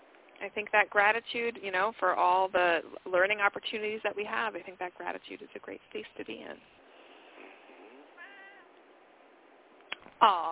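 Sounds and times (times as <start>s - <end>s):
faint hiss: 0.0s - 10.5s
speech: 0.4s - 6.8s, 10.2s - 10.5s
cat meowing: 8.1s - 8.8s.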